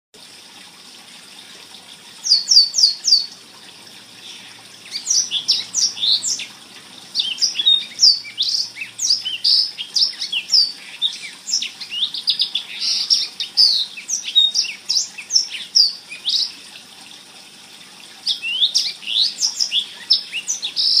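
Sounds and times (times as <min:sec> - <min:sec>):
blackthroat bird singing: 0:02.2 - 0:03.4, 0:04.2 - 0:16.6, 0:18.3 - 0:20.9.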